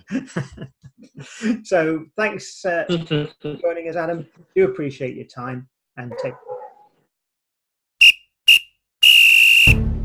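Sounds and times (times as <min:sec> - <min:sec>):
laughter: 0:00.0 - 0:01.5, 0:02.9 - 0:03.8
speech: 0:00.1 - 0:06.5
referee's whistle blasts: 0:08.0 - 0:09.8.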